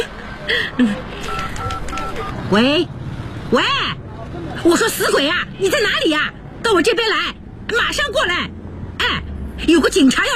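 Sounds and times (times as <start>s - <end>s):
speech: 0.5s - 1.3s, 2.2s - 10.3s
first-generation Motorola mobile phone keypad beeps from dialing: 1.2s - 2.4s.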